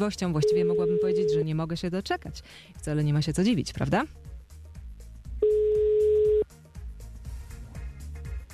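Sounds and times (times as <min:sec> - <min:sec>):
speech: 0:00.0 - 0:04.3
telephone ringback tone while calling a listener: 0:00.4 - 0:01.4, 0:05.4 - 0:06.4.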